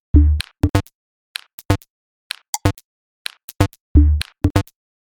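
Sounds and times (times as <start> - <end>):
music loop in D minor: 0.2 - 0.9, 4.0 - 4.7.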